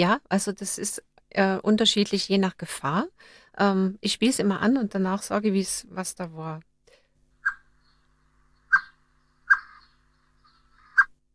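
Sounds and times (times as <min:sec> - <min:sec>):
speech: 0:00.0 - 0:06.7
Eurasian blackbird sharp clipped warning calls: 0:07.4 - 0:11.2.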